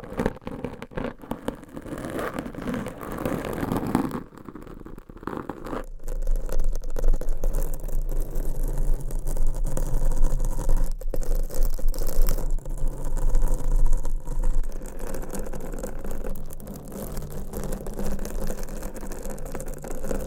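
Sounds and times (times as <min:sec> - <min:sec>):
scratching and rubbing on a microphone with long nails: 0:00.0 - 0:20.2.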